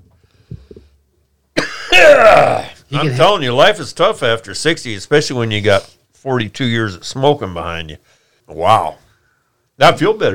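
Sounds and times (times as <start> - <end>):
person in a coughing fit with harsh raspy coughs: 1.6 - 2.8
speech: 2.0 - 9.0, 9.8 - 10.3.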